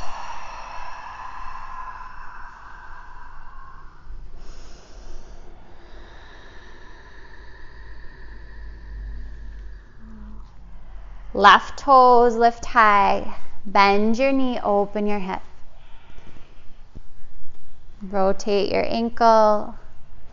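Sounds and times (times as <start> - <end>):
slow breathing out during a yoga session: 0.0 - 11.4, 15.5 - 18.0
continuous tonal background: 0.0 - 20.3
speech: 11.4 - 15.5, 18.0 - 19.8.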